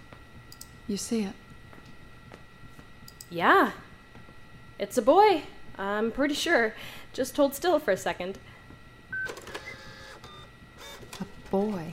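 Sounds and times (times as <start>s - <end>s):
speech: 0.9s - 1.4s, 3.3s - 3.9s, 4.8s - 8.5s, 11.5s - 11.9s
small ultrasound printer whirring as it prints an image: 9.2s - 11.9s.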